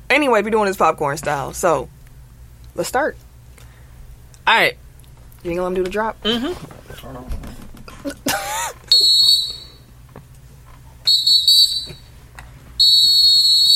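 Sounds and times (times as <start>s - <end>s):
speech: 0.1s - 2.0s, 2.8s - 3.2s, 4.5s - 4.8s, 5.4s - 7.4s
referee's whistle blasts: 8.9s - 9.9s, 11.1s - 12.1s, 12.8s - 13.7s.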